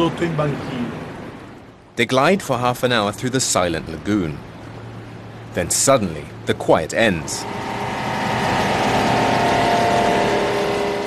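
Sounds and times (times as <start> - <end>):
speech: 0.0 - 1.0, 2.0 - 4.6, 5.5 - 7.8
motors of many fishing boats droning on a foggy lagoon: 0.0 - 11.0.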